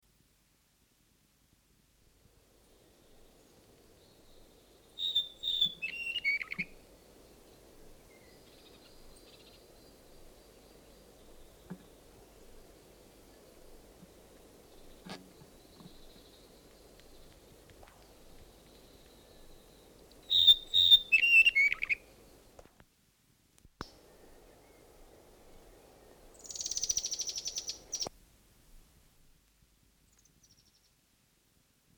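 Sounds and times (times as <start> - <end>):
yellowhead singing: 4.0 - 12.2, 14.6 - 17.4, 18.1 - 22.1, 26.0 - 28.1.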